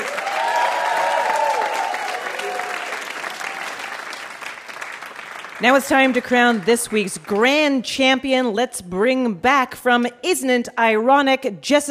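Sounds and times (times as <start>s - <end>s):
audience applause for a VIP guest: 0.0s - 7.5s
speech: 5.6s - 11.8s.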